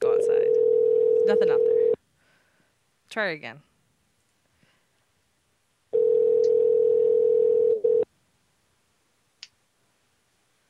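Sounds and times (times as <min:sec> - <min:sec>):
telephone dial tone: 0:00.5 - 0:02.0, 0:06.0 - 0:08.0
speech: 0:01.3 - 0:01.7, 0:03.1 - 0:03.7.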